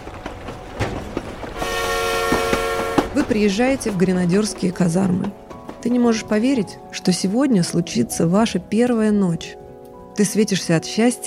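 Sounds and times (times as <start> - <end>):
passenger train wheels clattering over rail joints: 0.0 - 7.4
passenger train horn blaring: 1.5 - 3.5
speech: 3.2 - 9.6, 10.2 - 11.2.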